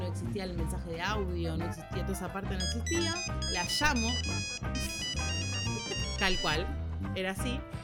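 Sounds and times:
speech: 0:00.3 - 0:07.8
polyphonic mobile phone ringtone with electronic melody and bass line: 0:02.6 - 0:06.7.

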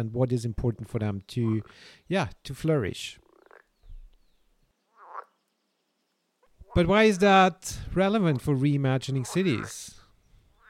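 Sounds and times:
speech: 0:00.0 - 0:03.2, 0:06.8 - 0:10.0
frog croaking: 0:03.2 - 0:04.0, 0:04.8 - 0:05.7, 0:06.4 - 0:07.4, 0:09.1 - 0:10.6.

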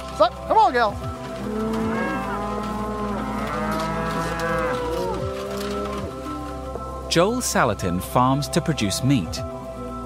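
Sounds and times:
speech: 0:00.2 - 0:01.8, 0:07.1 - 0:09.5
cows mooing on a pasture: 0:01.2 - 0:06.7.

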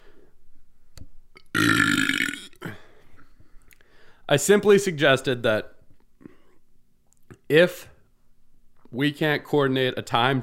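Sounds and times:
breaths: 0:00.0 - 0:00.4, 0:02.6 - 0:04.3, 0:06.2 - 0:06.7
person burping: 0:01.4 - 0:02.9
speech: 0:04.3 - 0:05.8, 0:07.5 - 0:07.9, 0:08.9 - 0:10.4.

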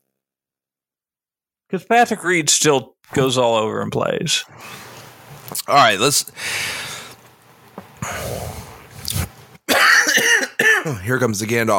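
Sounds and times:
speech: 0:01.7 - 0:04.9, 0:05.5 - 0:06.9, 0:10.9 - 0:11.7
breaths: 0:06.3 - 0:07.3, 0:08.0 - 0:08.9
person coughing with rough bursts and a harsh hacking fit: 0:09.7 - 0:11.1.

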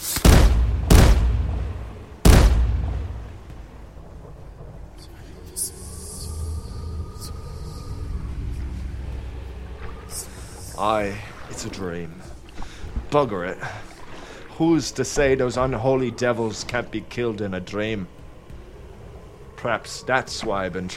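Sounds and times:
loud booming cannon shots fired from a ship: 0:00.2 - 0:03.4
speech: 0:10.8 - 0:12.4, 0:13.1 - 0:13.9, 0:14.6 - 0:18.2, 0:19.6 - 0:20.9.

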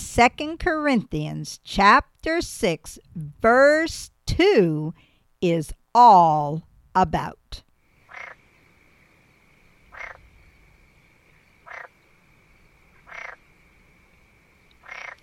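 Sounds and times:
speech: 0:00.2 - 0:07.6
frog croaking: 0:07.9 - 0:12.2, 0:12.8 - 0:15.2.

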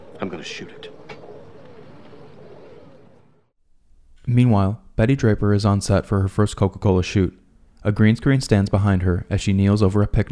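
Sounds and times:
flock of pigeons cooing: 0:00.0 - 0:03.5
noise: 0:00.0 - 0:10.3
speech: 0:00.3 - 0:01.0, 0:04.3 - 0:10.3.

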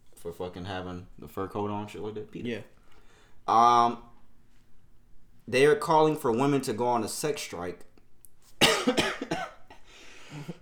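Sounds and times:
speech: 0:00.2 - 0:02.8, 0:03.5 - 0:04.1, 0:05.5 - 0:07.9, 0:08.8 - 0:09.5, 0:10.3 - 0:10.5
harsh raspy coughs: 0:08.6 - 0:10.5.

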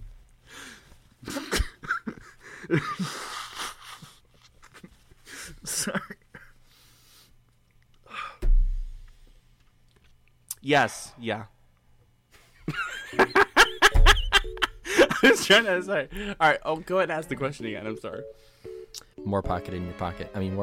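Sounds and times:
speech: 0:02.7 - 0:03.2, 0:10.7 - 0:11.6, 0:15.2 - 0:18.5, 0:19.2 - 0:20.6
person blowing nose: 0:03.0 - 0:04.2
laughter: 0:12.7 - 0:15.7.

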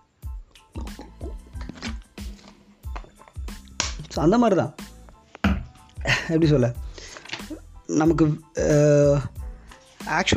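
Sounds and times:
person drinking water: 0:00.5 - 0:04.1, 0:05.4 - 0:05.8
speech: 0:04.2 - 0:04.8, 0:06.3 - 0:06.8, 0:07.9 - 0:09.4, 0:10.1 - 0:10.3.

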